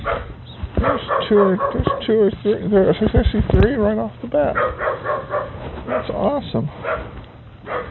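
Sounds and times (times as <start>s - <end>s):
dogs yipping: 0.0s - 2.3s, 4.5s - 6.2s, 6.8s - 7.8s
dogs barking: 0.0s - 2.6s, 4.4s - 7.8s
speech: 0.8s - 5.3s, 5.9s - 7.8s.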